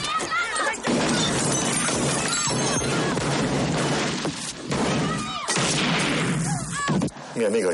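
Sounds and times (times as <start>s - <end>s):
people shouting: 0.0s - 3.6s, 4.9s - 5.7s
gunfire in a film shootout: 0.8s - 6.5s
glass shattering: 0.9s - 6.3s
speech: 7.4s - 7.7s.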